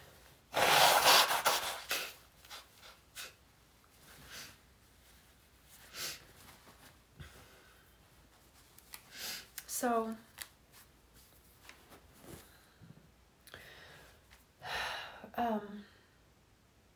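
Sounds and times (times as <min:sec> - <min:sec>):
person blowing nose: 0:00.5 - 0:03.4
speech: 0:09.8 - 0:10.3.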